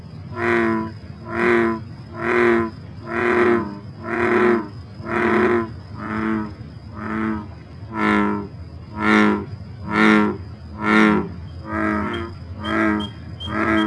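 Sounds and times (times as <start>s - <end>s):
bullfrog calling: 0.3s - 13.8s.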